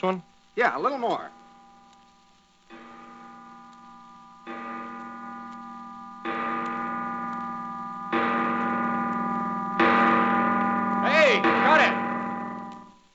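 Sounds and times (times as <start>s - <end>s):
speech: 0.0s - 1.4s
amplified clock chime via contact mic: 0.7s - 13.1s.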